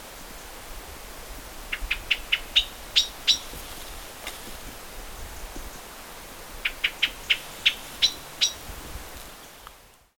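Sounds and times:
background hiss: 0.0s - 10.1s
Common blackbird Turdus merula high call notes: 1.7s - 3.5s, 6.6s - 8.6s.

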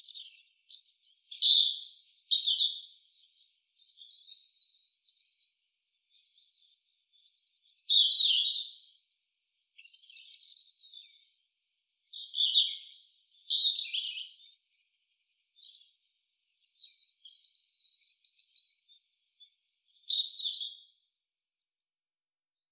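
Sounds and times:
European robin Erithacus rubecula song phrases: 0.0s - 22.6s.

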